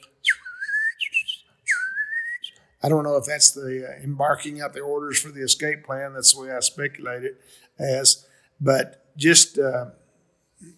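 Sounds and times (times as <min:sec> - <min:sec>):
person whistling imitation of quail alarm call: 0:00.0 - 0:02.6
speech: 0:02.8 - 0:10.0, 0:10.6 - 0:10.7.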